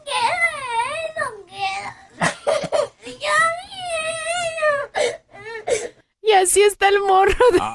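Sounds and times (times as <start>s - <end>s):
child crying and sobbing: 0.0s - 6.0s
speech: 6.5s - 7.7s.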